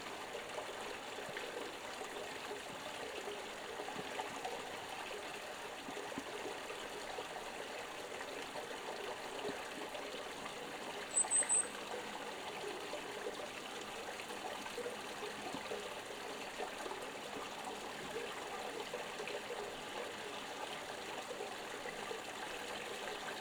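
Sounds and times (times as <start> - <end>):
stream flowing: 0.1 - 23.3
birds: 11.1 - 11.7.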